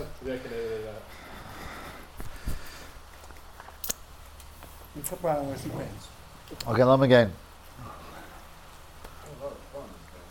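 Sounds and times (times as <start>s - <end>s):
speech: 0.0s - 1.2s, 5.0s - 8.0s
soft steady rain pattering: 0.0s - 10.2s.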